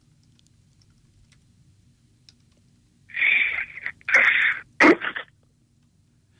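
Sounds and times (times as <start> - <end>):
voice imitating a watermelon cracking open as it is cut: 3.1 - 5.3.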